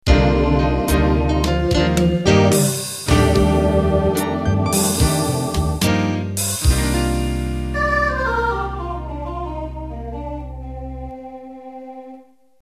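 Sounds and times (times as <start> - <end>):
slow jazz ending played on MIDI: 0.1 - 11.7.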